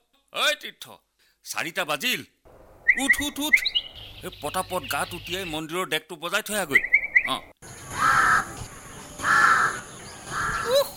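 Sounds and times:
speech: 0.3s - 2.4s, 3.0s - 8.2s
crow cawing in the early morning: 7.8s - 8.6s, 9.2s - 10.8s.

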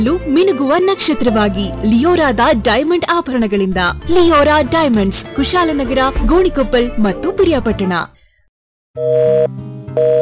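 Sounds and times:
speech: 0.0s - 8.2s, 9.0s - 10.1s
telephone busy tone: 9.0s - 10.1s.

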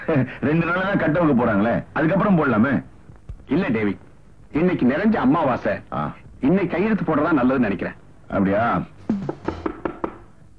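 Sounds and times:
speech: 0.1s - 2.9s, 3.5s - 9.4s
knocking on a door: 9.1s - 10.4s.

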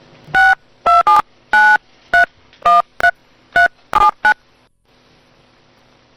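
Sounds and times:
phone keypad tones from dialing: 0.4s - 4.4s.

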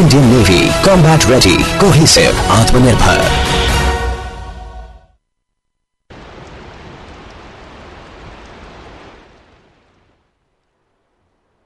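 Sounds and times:
speech: 0.0s - 3.7s
music: 0.0s - 5.2s
rain falling: 6.1s - 11.6s.

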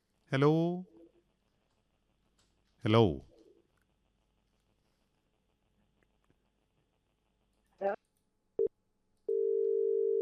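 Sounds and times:
speech: 0.3s - 0.9s, 2.8s - 3.3s
telephone busy tone after a call line is cut: 9.3s - 10.2s.

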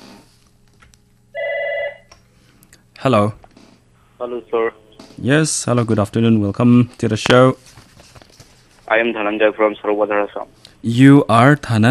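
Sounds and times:
telephone ringing for an incoming call: 1.3s - 2.1s
speech: 3.0s - 3.4s, 4.2s - 7.8s, 8.9s - 11.8s.

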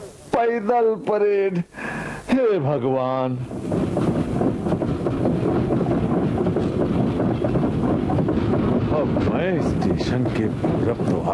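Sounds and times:
speech: 0.4s - 4.6s, 9.0s - 11.3s
train passing at a railway station: 3.2s - 11.3s.

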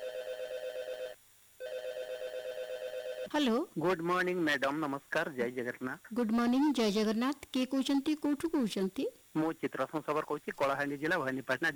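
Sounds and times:
telephone ringing with buzzing electronic trills: 0.0s - 3.4s
speech: 3.3s - 11.7s.

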